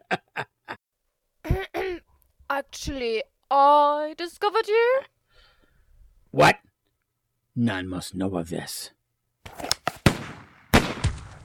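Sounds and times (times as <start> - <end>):
speech: 2.6 - 5.1, 6.3 - 6.6, 7.6 - 9.0
gunshots: 9.5 - 11.4.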